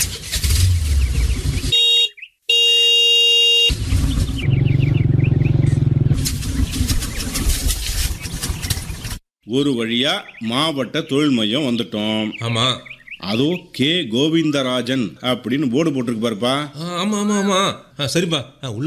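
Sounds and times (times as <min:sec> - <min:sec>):
vehicle starting and driving off: 0:00.0 - 0:01.7, 0:03.7 - 0:09.2
busy traffic noise: 0:00.0 - 0:09.2
birds chirping: 0:00.3 - 0:17.5
horn honking: 0:01.6 - 0:05.1
speech: 0:09.5 - 0:18.8.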